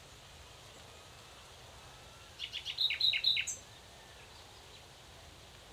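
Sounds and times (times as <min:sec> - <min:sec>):
common nightingale Luscinia megarhynchos sharp high chirping: 0:02.4 - 0:03.6.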